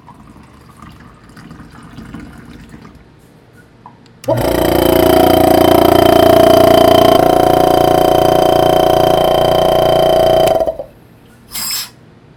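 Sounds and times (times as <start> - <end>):
pump pumping and filtering muddy water in a water chemistry lab: 4.2 - 11.0.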